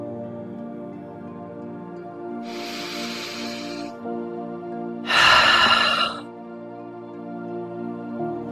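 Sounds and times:
soft sustained musical tones: 0.0 - 8.4
person taking slow breaths: 2.4 - 4.0, 5.1 - 6.2.

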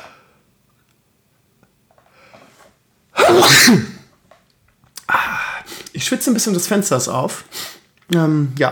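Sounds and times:
person sneezing: 3.2 - 4.1
speech: 3.4 - 3.9, 6.1 - 8.7.

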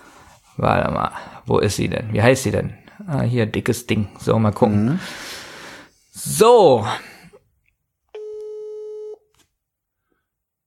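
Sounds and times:
speech: 0.6 - 5.4, 6.2 - 7.1
telephone ringback tone during an outgoing call: 8.2 - 9.2.

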